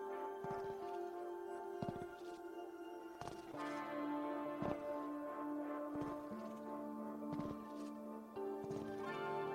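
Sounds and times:
droning musical tone: 0:00.0 - 0:09.5
slow heavy footsteps approaching: 0:00.4 - 0:01.1, 0:01.8 - 0:02.5, 0:03.2 - 0:03.9, 0:04.6 - 0:05.2, 0:05.8 - 0:08.0, 0:08.6 - 0:09.2.

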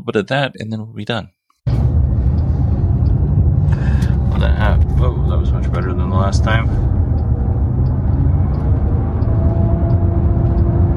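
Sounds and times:
speech: 0:00.0 - 0:01.4, 0:04.4 - 0:07.0
four-person side-by-side UTV engine idling while backing into road: 0:01.7 - 0:10.9.

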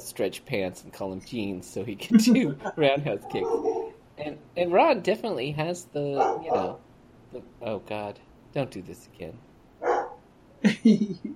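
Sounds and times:
speech: 0:00.2 - 0:09.5, 0:10.6 - 0:11.3
dog barking: 0:03.2 - 0:04.0, 0:06.2 - 0:06.8, 0:09.8 - 0:10.2.

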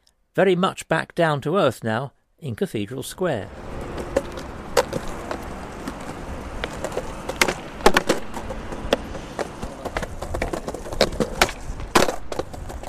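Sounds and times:
speech: 0:00.4 - 0:03.7
skateboard rolling across hard paving: 0:03.5 - 0:12.8.

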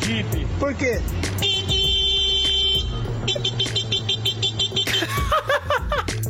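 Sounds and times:
speech: 0:00.1 - 0:01.5
man imitating a car horn with his voice: 0:01.4 - 0:05.2
man chuckling: 0:04.9 - 0:06.1.

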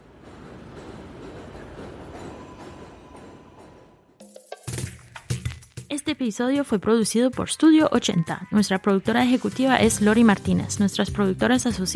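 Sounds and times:
train passing overhead near a station by a bakery: 0:00.0 - 0:04.2
speech: 0:05.9 - 0:11.9.

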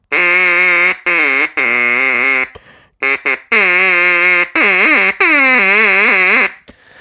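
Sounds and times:
duck call blown in buzzy bursts: 0:00.1 - 0:06.6.

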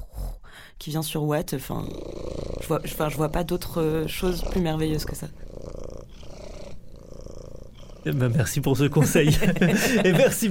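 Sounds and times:
speech: 0:00.8 - 0:05.5, 0:08.0 - 0:10.4
cat purring: 0:01.5 - 0:09.9
laughter: 0:09.0 - 0:10.4.

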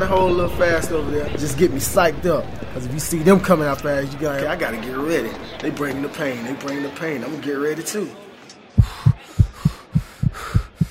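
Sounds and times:
speech: 0:00.0 - 0:08.2
fast heartbeat: 0:08.8 - 0:10.8.

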